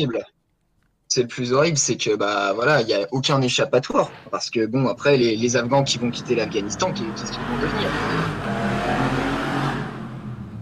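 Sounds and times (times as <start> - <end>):
speech: 0.0 - 0.3, 1.1 - 8.7
motor engines roaring and revving: 5.6 - 10.6.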